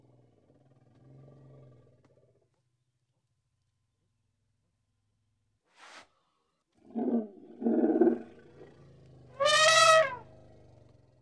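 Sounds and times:
Indian elephant harmonic trumpet blast: 0:09.4 - 0:10.2.

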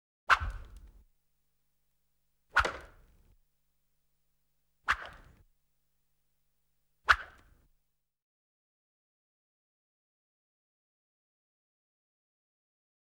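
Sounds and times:
whip lashes: 0:00.3 - 0:01.0, 0:02.6 - 0:03.2, 0:04.9 - 0:05.4, 0:07.1 - 0:07.6.

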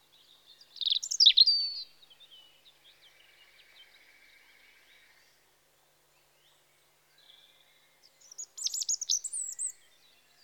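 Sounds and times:
European robin Erithacus rubecula singing in spring: 0:00.2 - 0:05.2, 0:08.1 - 0:10.0.

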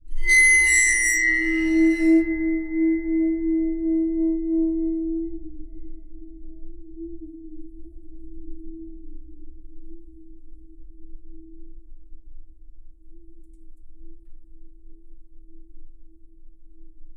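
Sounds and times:
bowed waterphone recorded with contact mic: 0:00.0 - 0:08.3.

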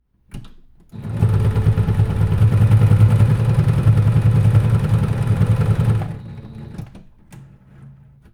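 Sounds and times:
sewing machine presser foot set down and released: 0:00.3 - 0:08.3
electric sewing machine running at nearly full speed: 0:00.9 - 0:07.1.

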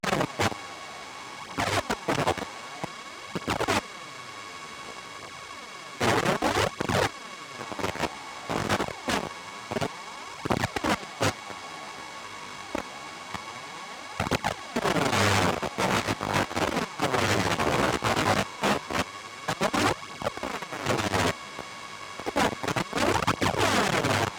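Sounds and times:
AM transmission apparatus tuning: 0:00.0 - 0:00.6, 0:01.4 - 0:03.8, 0:06.0 - 0:11.7, 0:14.1 - 0:24.3.

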